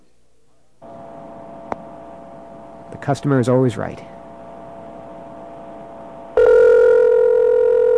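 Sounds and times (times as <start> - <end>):
faint low hum: 0.0 - 7.9
speech: 3.0 - 4.2
rotary phone ring tone on customer service call: 6.4 - 7.9.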